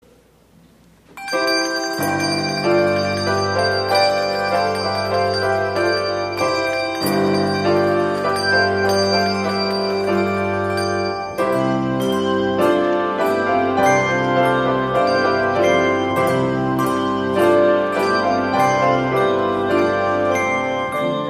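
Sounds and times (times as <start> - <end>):
piano: 0.0 - 21.2
bells: 1.2 - 21.2.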